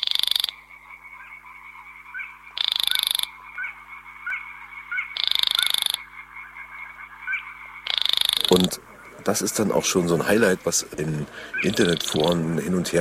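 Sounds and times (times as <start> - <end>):
frogs croaking: 0.0 - 12.9
grey-brown black and white reed-dwelling marsh bird rasping call: 2.1 - 6.6, 7.2 - 12.6
speech: 8.5 - 12.9.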